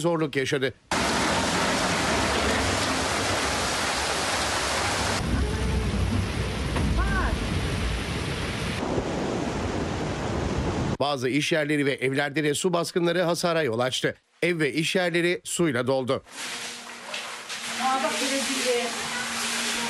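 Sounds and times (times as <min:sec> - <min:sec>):
speech: 0:00.0 - 0:00.9, 0:11.0 - 0:16.7
heavy afternoon rain shower over a flooding city: 0:00.9 - 0:11.0, 0:17.8 - 0:19.8
thunder rumbling over a city: 0:00.9 - 0:11.0.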